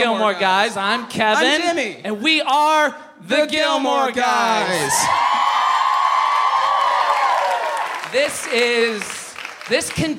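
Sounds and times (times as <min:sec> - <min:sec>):
speech: 0:00.0 - 0:05.4, 0:08.1 - 0:09.1, 0:09.7 - 0:10.1
large rowdy live audience at a live show cheering and whooping: 0:04.6 - 0:09.1.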